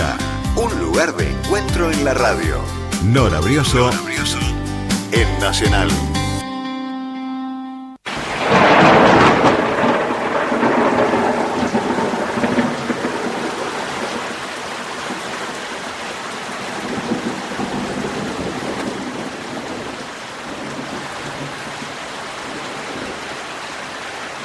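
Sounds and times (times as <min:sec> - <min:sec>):
held musical tone: 0:00.0 - 0:08.0
speech: 0:01.0 - 0:04.5, 0:05.1 - 0:06.1
deep rolling rumble of thunder: 0:08.1 - 0:14.4, 0:16.8 - 0:21.9
steady heavy rain used as white noise: 0:08.1 - 0:24.4.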